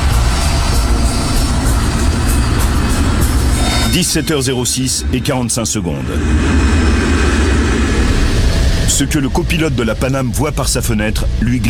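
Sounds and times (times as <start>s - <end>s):
airliner jet engines roaring during takeoff on a runway: 0.0s - 11.6s
speech: 3.9s - 7.1s, 9.0s - 11.6s.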